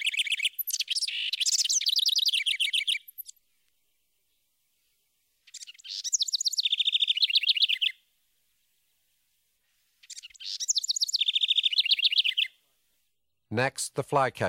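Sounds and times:
house wren singing complex song of chattering trills: 0:00.0 - 0:03.7, 0:05.4 - 0:08.0, 0:10.0 - 0:12.6
speech: 0:13.6 - 0:14.4.

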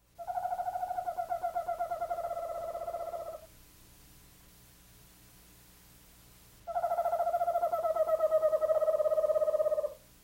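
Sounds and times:
faint low hum: 0:00.0 - 0:10.2
eastern screech owl quavering whistled trills: 0:00.2 - 0:03.5, 0:06.7 - 0:10.0.

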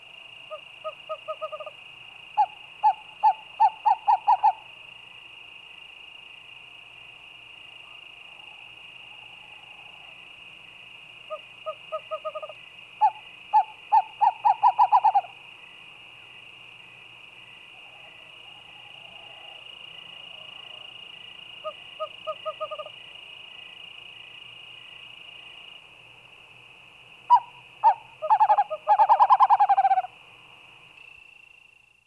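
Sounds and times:
high insect drone at night: 0:00.0 - 0:32.0
western screech owl whistled toots: 0:02.4 - 0:04.6, 0:11.3 - 0:15.3, 0:27.3 - 0:30.1.

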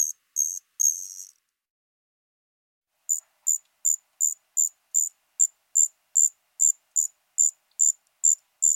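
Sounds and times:
striped ground cricket Allonemobius fasciatus singing: 0:00.0 - 0:01.4, 0:03.1 - 0:08.7.

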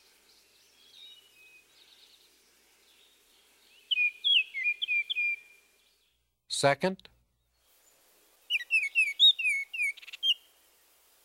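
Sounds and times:
Baltimore Oriole whistled song: 0:03.9 - 0:05.6, 0:08.5 - 0:10.5
speech: 0:06.6 - 0:07.1.

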